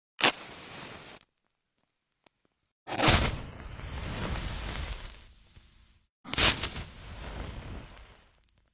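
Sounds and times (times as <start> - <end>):
match lighting: 0.2 - 1.4, 2.9 - 8.7.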